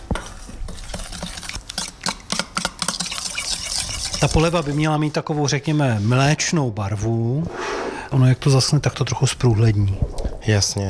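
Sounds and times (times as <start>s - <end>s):
spoon scraping and clicking against a bowl through a thick mixture: 0.0s - 6.2s
speech: 4.2s - 10.8s.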